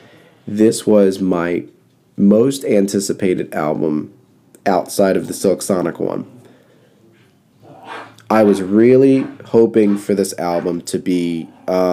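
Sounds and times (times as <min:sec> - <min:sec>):
speech: 0:00.5 - 0:06.4, 0:08.3 - 0:11.9
dogs barking faintly: 0:07.6 - 0:10.8.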